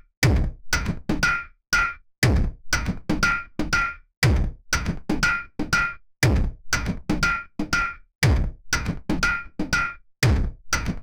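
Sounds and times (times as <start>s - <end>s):
industrial IDM percussion, electronica: 0.3s - 11.0s.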